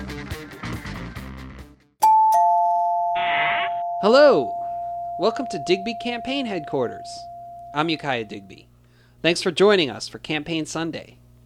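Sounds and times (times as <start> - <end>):
music: 0.0 - 2.0
doorbell ringing with two ding-dong tones: 2.0 - 8.5
speech: 4.0 - 4.6, 5.2 - 11.4.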